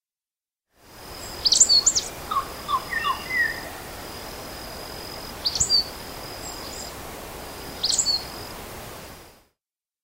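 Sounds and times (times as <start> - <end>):
steady background hiss: 0.8 - 9.6
lower whistled notes of red-collared myzomela: 1.4 - 3.8.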